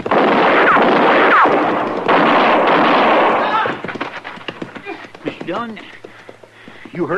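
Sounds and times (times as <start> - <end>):
loud gunshots in a Western scene: 0.0 - 4.3
speech: 5.6 - 6.0, 7.0 - 7.1.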